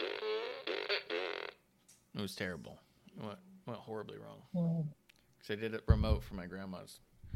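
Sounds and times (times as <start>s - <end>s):
fart noise from a toy fart gun: 0.0s - 1.6s
speech: 2.2s - 7.1s.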